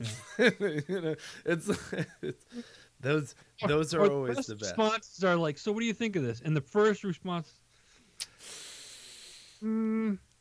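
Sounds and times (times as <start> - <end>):
laughter: 0.0 - 2.4
speech: 0.0 - 7.6, 9.6 - 10.3
sharp hissing inhale through clenched teeth: 7.8 - 9.6.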